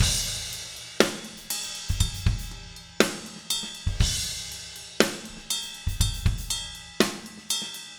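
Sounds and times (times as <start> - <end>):
slow tempo pop rock ballad drums chorus: 0.0 - 7.8.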